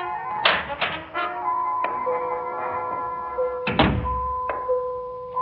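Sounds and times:
door hinges creaking as a door is opened: 0.3 - 4.8
sharp knocks: 0.4 - 1.2, 3.6 - 4.7
heavy thump: 3.6 - 4.7.

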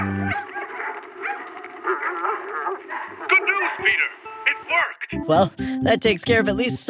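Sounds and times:
several dogs barking and yipping excitedly: 0.0 - 4.2
speech: 5.3 - 6.8.

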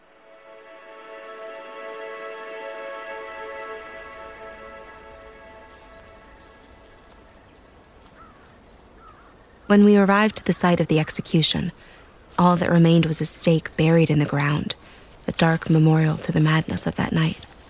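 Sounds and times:
low sustained tonal drone: 0.0 - 8.2
rain pattering on a surface: 4.8 - 17.6
speech: 9.7 - 17.5.

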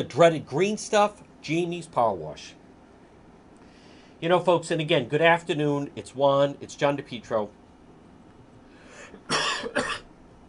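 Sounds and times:
speech: 0.0 - 2.6, 4.2 - 7.6
faint breathy sound: 3.6 - 4.2, 8.7 - 9.2
man coughing from cigar smoking: 9.0 - 10.1.

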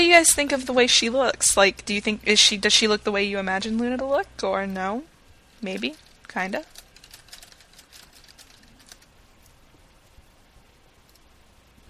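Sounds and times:
faint hiss: 0.0 - 11.8
speech: 0.2 - 6.7
keyboard typing: 5.8 - 9.1.

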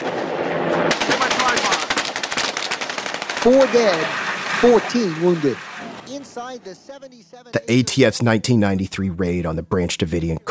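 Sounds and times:
automatic gunfire bursts during raid: 0.9 - 4.6
speech: 3.4 - 10.4.

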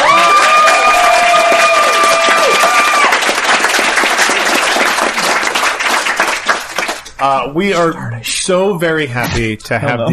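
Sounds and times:
crowd applauding with cheering and whoops: 0.0 - 7.2
speech: 7.2 - 10.1.

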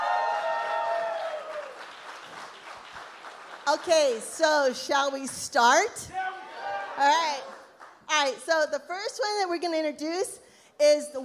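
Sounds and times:
audience cheering and whooping: 0.0 - 2.0, 6.1 - 7.0
audience clapping: 0.0 - 4.4, 7.3 - 8.1
speech: 3.7 - 6.2, 7.0 - 7.5, 8.2 - 11.2.

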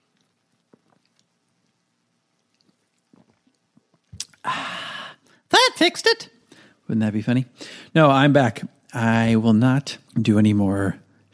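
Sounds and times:
person sipping club soda: 0.0 - 5.4
soft wet mouth clicks: 2.4 - 4.5
speech: 5.8 - 11.3.

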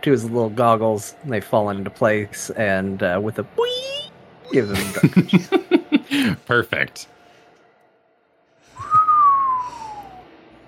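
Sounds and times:
speech: 0.0 - 7.2
laughter: 4.6 - 6.4
person whistling one long downward-sliding note: 8.8 - 10.3.

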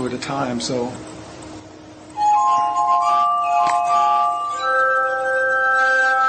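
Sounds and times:
speech: 0.1 - 1.1
glass armonica of nested rotating wine glasses playing: 2.1 - 6.2.

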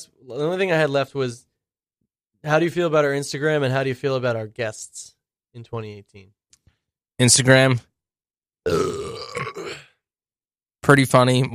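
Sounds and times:
speech: 0.0 - 1.5, 2.4 - 6.4, 7.2 - 7.9, 8.6 - 9.5, 10.9 - 11.5
loud burp: 8.6 - 10.0.

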